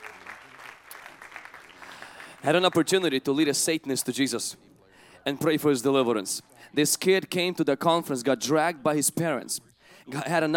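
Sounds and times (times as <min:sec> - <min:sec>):
applause from a group: 0:00.0 - 0:03.1
speech: 0:02.4 - 0:10.5.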